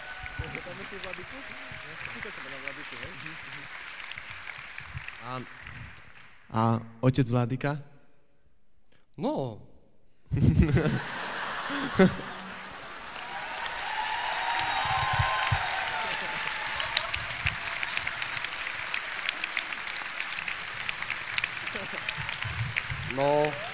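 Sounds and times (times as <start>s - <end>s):
crowd applauding: 0.0s - 6.5s, 10.8s - 23.7s
speech: 0.4s - 4.0s, 5.2s - 5.9s, 6.5s - 7.9s, 9.2s - 9.7s, 10.3s - 12.4s
people chuckling and laughing: 10.4s - 13.6s, 15.0s - 18.4s, 21.5s - 23.7s.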